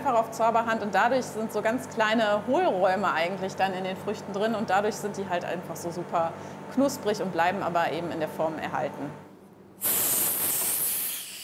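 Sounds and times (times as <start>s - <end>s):
speech: 0.1s - 10.0s
air rushing into a freeze-drying chamber holding strawberries: 9.8s - 11.4s.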